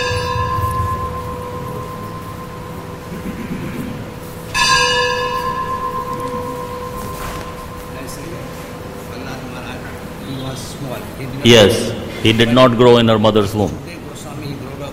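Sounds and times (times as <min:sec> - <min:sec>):
church bell tolling: 0:00.0 - 0:09.3
speech: 0:11.4 - 0:13.9.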